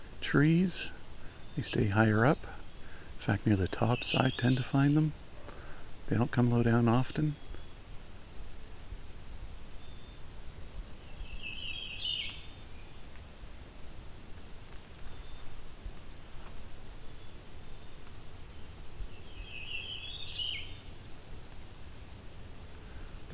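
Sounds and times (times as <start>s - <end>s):
American Redstart song of high thin phrases: 0.0s - 5.2s, 9.3s - 23.3s
steady low rumbling background noise: 0.0s - 23.3s
speech: 0.3s - 1.0s, 1.6s - 2.6s, 3.2s - 5.2s, 6.1s - 7.4s.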